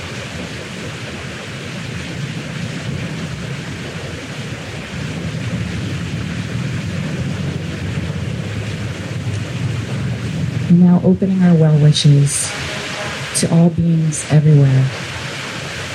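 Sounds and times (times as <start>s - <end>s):
ocean surf waves: 0.0s - 15.9s
speech: 10.8s - 12.6s, 13.4s - 15.0s.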